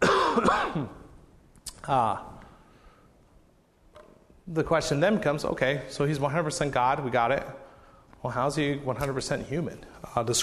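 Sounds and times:
person clearing throat: 0:00.0 - 0:01.1
person coughing: 0:00.0 - 0:01.1
speech: 0:00.4 - 0:01.0, 0:01.8 - 0:02.4, 0:04.5 - 0:07.6, 0:08.2 - 0:10.4.

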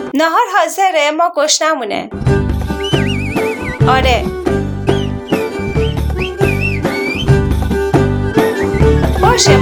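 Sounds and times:
speech: 0:00.2 - 0:03.1, 0:03.9 - 0:04.4, 0:09.4 - 0:09.6
steady droning musical background: 0:02.4 - 0:09.6
message whistled in the Kuşköy whistled language: 0:02.8 - 0:03.7, 0:04.9 - 0:07.4.

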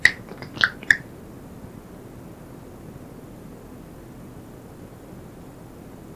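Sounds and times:
finger snaps during a guided exercise: 0:00.0 - 0:01.0.

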